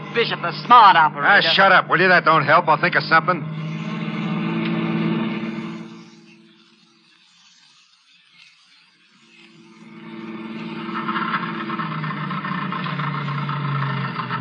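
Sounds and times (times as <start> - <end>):
car engine sputtering as the car runs out of gas: 0.0 - 6.6, 9.8 - 14.3
speech: 0.2 - 3.6.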